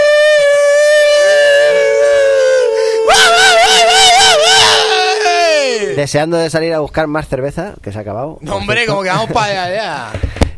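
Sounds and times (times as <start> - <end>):
coyotes howling under a full moon: 0.0 - 6.0
speech: 6.0 - 10.5.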